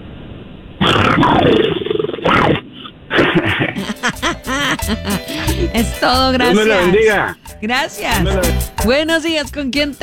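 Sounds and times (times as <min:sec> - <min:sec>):
person imitating a short growl over a telephone-like line: 0:00.8 - 0:05.7
speech: 0:01.2 - 0:01.6, 0:04.9 - 0:10.0
laughter: 0:03.2 - 0:07.4.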